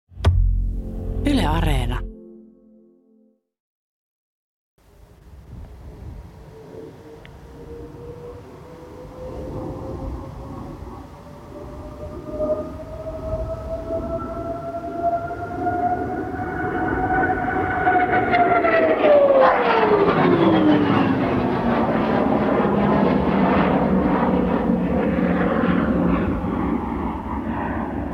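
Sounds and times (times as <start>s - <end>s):
speech: 1.5s - 2.1s
fighter jet flying overhead: 5.8s - 28.1s.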